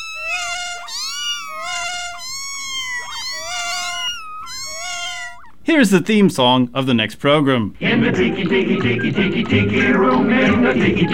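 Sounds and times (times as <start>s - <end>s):
kittens meowing: 0.0s - 5.6s
speech: 5.7s - 11.1s.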